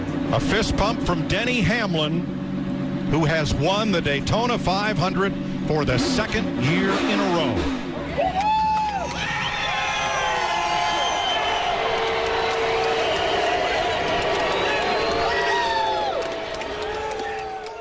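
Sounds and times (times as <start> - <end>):
speech: 0.3 - 2.4, 3.1 - 8.5
people shouting and whooping in crowd: 8.0 - 17.8
large crowd booing at race finish: 8.1 - 17.8.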